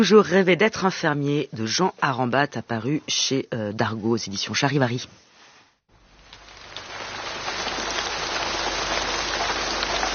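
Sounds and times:
speech: 0:00.0 - 0:05.3
steady rain pouring: 0:05.9 - 0:10.1.

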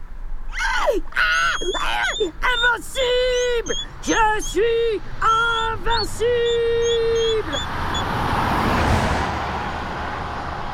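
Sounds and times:
speech: 0:00.9 - 0:08.2
car engine and tyres rushing past: 0:07.6 - 0:10.7.

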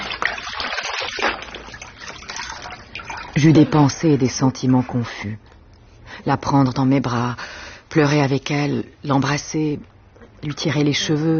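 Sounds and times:
water poured over a standing person to rinse them on a tiled floor: 0:00.0 - 0:05.0
speech: 0:03.4 - 0:05.5, 0:06.2 - 0:11.3.

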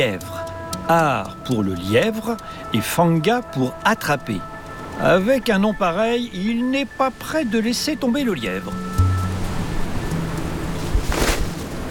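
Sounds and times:
speech: 0:00.0 - 0:09.0
blustery wind roaring in a snowstorm: 0:08.9 - 0:11.8.

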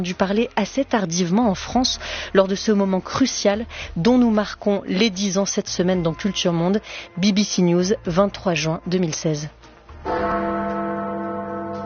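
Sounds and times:
speech: 0:00.0 - 0:09.6
great clock-tower bell striking ten o'clock in Westminster London: 0:10.0 - 0:11.8.

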